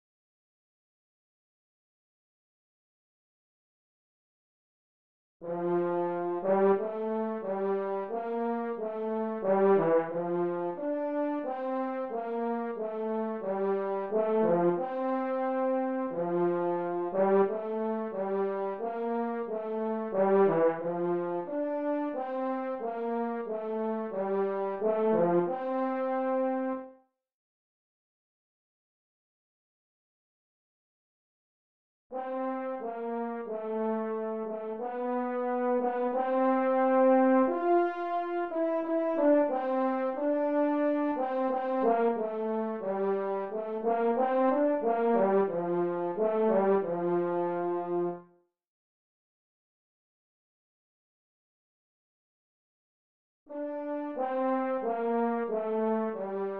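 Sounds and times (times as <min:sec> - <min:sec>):
french horn playing a hymn: 0:05.4 - 0:26.9, 0:32.2 - 0:48.3, 0:53.5 - 0:56.5.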